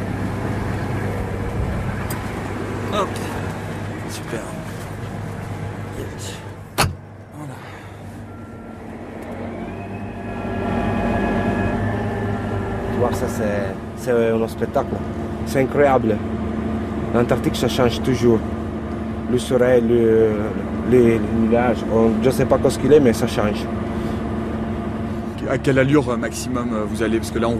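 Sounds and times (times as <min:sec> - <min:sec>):
heavy polar tractor engine droning while driving: 0:00.0 - 0:27.5
sharp clunk: 0:06.7 - 0:07.1
speech: 0:13.4 - 0:16.5, 0:17.1 - 0:18.6, 0:19.3 - 0:23.8, 0:25.5 - 0:27.5.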